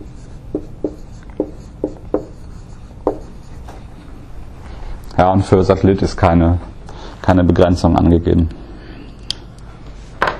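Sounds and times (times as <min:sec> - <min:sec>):
pen strokes of handwriting on paper: 0:00.0 - 0:03.6
speech: 0:05.2 - 0:08.6.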